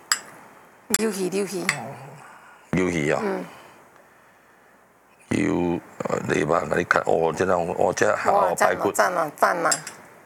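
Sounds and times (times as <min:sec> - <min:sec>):
speech: 0:00.9 - 0:03.6, 0:05.3 - 0:09.9
person murmuring: 0:01.7 - 0:03.7, 0:05.3 - 0:06.9, 0:07.7 - 0:09.6
metal utensils scraping and clinking against a plate as food is cut: 0:09.7 - 0:10.0.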